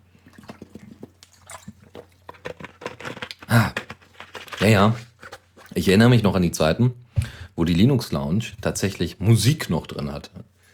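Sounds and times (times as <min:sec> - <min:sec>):
gulping swallows of water: 0:00.0 - 0:05.8
person sipping water: 0:00.0 - 0:05.8, 0:07.2 - 0:07.5
speech: 0:04.6 - 0:05.1, 0:05.8 - 0:07.0, 0:07.6 - 0:10.5.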